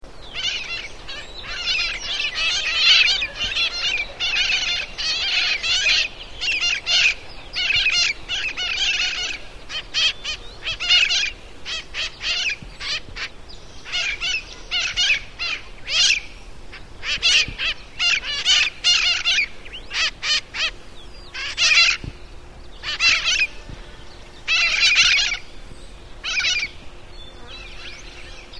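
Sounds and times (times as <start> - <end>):
Mitred Parakeet calling: 0.2 - 28.5.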